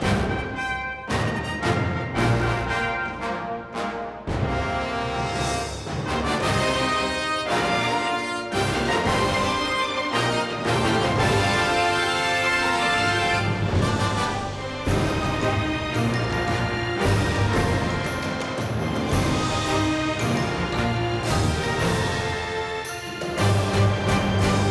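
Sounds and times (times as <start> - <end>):
heroic cinematic fanfare game music: 0.0 - 24.6.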